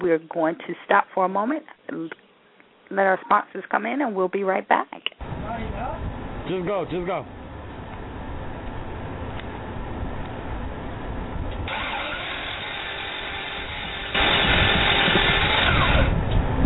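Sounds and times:
speech: 0.0 - 2.2, 2.9 - 5.2, 5.8 - 7.4
struggling car engine cranking and sputtering while trying to start: 7.3 - 16.5.

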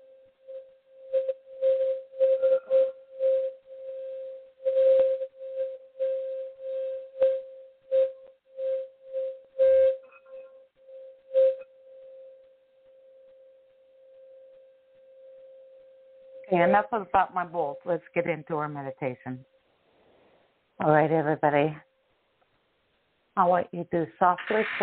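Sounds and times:
528-hertz sine tone played for meditation: 0.0 - 19.6
speech: 16.6 - 19.5, 20.8 - 21.9, 23.4 - 24.8.

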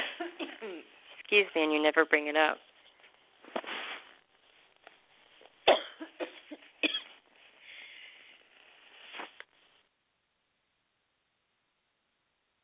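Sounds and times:
person coughing: 0.2 - 0.8, 5.7 - 7.2
speech: 1.3 - 2.7
raspy breaths and throat sounds: 7.5 - 8.5.

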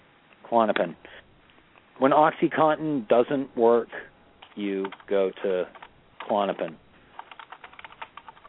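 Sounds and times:
speech: 0.5 - 1.2, 2.0 - 6.8
typing on a keyboard: 4.4 - 8.4.

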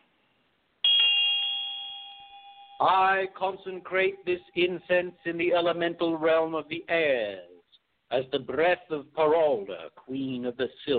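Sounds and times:
small ritual hand bell ringing: 0.9 - 3.2
speech: 2.8 - 7.5, 8.1 - 10.9.

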